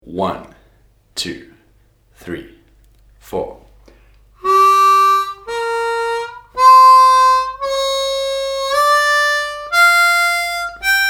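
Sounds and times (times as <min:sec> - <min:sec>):
harmonica playing blues scale in 2nd position: 0:04.4 - 0:11.0.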